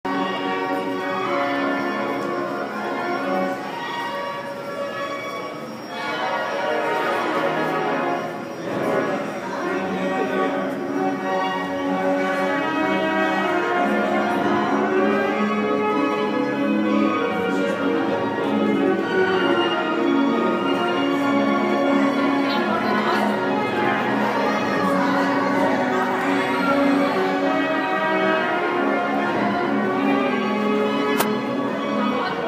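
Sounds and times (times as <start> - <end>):
carousel organ-like music with bell-like tones: 0.1 - 32.3
faint voices at a carousel: 0.1 - 32.3
sharp click: 31.2 - 31.4.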